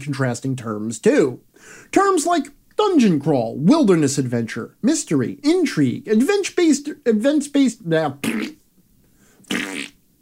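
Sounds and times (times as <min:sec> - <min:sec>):
speech: 0:00.0 - 0:08.6, 0:09.5 - 0:09.8
comical fart sound effect: 0:08.2 - 0:08.6, 0:09.4 - 0:10.0.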